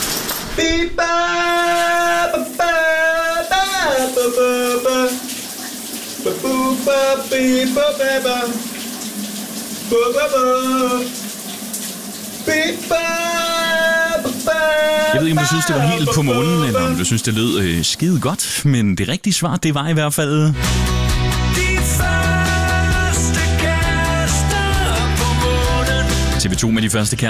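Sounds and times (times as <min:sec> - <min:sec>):
shower water running: 0:00.0 - 0:00.6, 0:01.2 - 0:18.6, 0:21.6 - 0:26.5
speech: 0:00.6 - 0:01.8, 0:06.2 - 0:08.7, 0:09.9 - 0:11.2, 0:12.5 - 0:13.4, 0:14.7 - 0:21.1, 0:26.4 - 0:27.2
person singing in a shower cabin: 0:00.6 - 0:05.2, 0:06.2 - 0:08.6, 0:12.5 - 0:17.4, 0:21.4 - 0:26.6.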